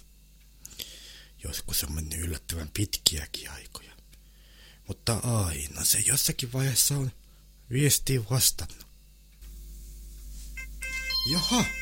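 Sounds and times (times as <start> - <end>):
low hum: 0.0 - 11.8
speech: 1.4 - 4.0, 4.9 - 8.9, 11.2 - 11.8
phone ringtone for an incoming call: 10.6 - 11.8.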